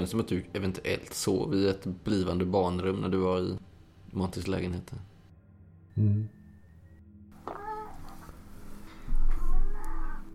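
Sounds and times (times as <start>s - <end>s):
speech: 0.0s - 5.1s, 6.0s - 6.4s
black cat meowing while walking around: 7.4s - 8.3s, 9.2s - 10.3s.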